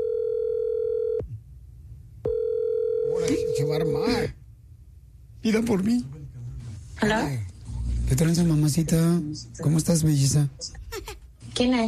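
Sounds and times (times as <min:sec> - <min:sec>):
telephone ringback tone while a call is being placed: 0:00.0 - 0:01.2, 0:02.3 - 0:03.7
speech: 0:03.6 - 0:04.4, 0:05.4 - 0:06.2, 0:07.0 - 0:07.5, 0:08.1 - 0:10.8, 0:11.6 - 0:11.8.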